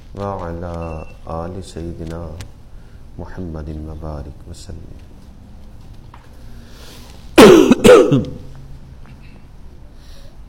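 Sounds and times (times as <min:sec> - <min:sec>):
speech: 0:00.2 - 0:02.6, 0:03.2 - 0:05.1, 0:07.8 - 0:08.4
quiet breathing: 0:02.6 - 0:03.2, 0:06.3 - 0:07.3, 0:09.1 - 0:10.4
harsh coughing: 0:07.4 - 0:08.5.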